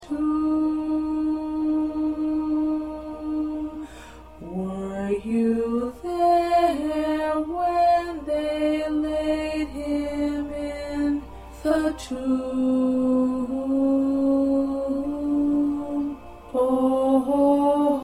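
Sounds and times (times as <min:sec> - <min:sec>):
alto voice singing: 0:00.0 - 0:18.0.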